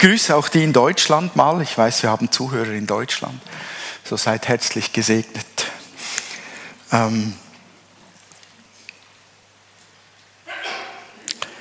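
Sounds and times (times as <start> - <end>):
speech: 0.0 - 5.7, 6.9 - 7.4
person sneezing: 10.5 - 11.2.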